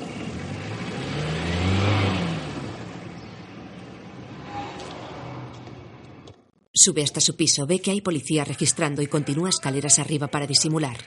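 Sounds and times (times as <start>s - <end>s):
police patrol car engine driving away from a house doorway: 0.0s - 6.6s
speech: 6.8s - 11.0s.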